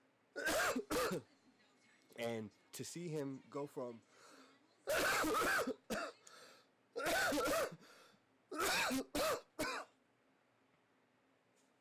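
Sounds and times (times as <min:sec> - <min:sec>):
person coughing in rough hacking fits: 0:00.4 - 0:01.2, 0:04.9 - 0:06.2, 0:07.0 - 0:07.8, 0:08.6 - 0:09.9
speech: 0:01.1 - 0:01.4, 0:02.2 - 0:04.3, 0:04.9 - 0:05.8.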